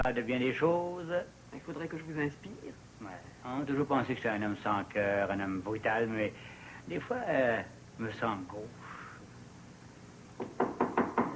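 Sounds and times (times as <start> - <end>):
speech: 0.0 - 8.8
firm knocks on a wooden door: 10.4 - 11.3.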